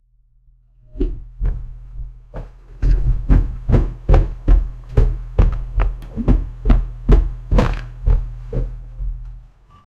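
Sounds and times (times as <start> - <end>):
beats: 1.0 - 9.4.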